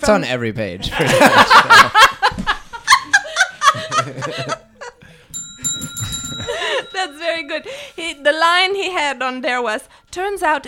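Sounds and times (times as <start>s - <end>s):
speech: 0.0s - 2.1s, 7.5s - 10.6s
hearty laughter from a few people: 0.8s - 5.1s
single bright bell ringing: 5.2s - 9.1s.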